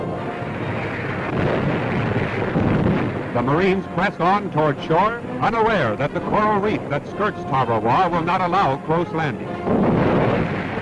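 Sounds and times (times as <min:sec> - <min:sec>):
naval heavy gunfire and explosions barrage: 0:00.0 - 0:10.7
speech: 0:03.4 - 0:09.9.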